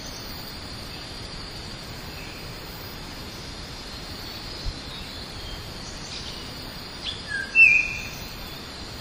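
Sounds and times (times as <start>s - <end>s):
steady background noise: 0.0s - 8.9s
Bornean oriole giving a brief whistled call: 7.1s - 8.3s.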